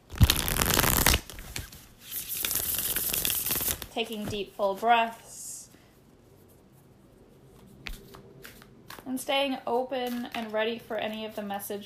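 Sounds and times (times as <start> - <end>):
tarot cards being shuffled: 0.1 - 3.9, 7.6 - 9.1
speech: 4.0 - 5.2, 9.2 - 11.8.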